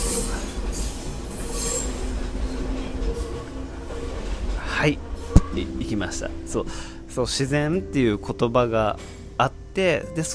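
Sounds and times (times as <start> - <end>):
high metallic train wheel squeal: 0.0 - 3.5
train rumbling past: 0.0 - 10.2
speech: 4.8 - 10.3.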